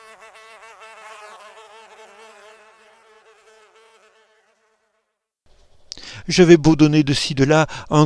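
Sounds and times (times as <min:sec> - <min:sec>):
flies buzzing: 0:00.0 - 0:05.2
speech: 0:06.2 - 0:08.0.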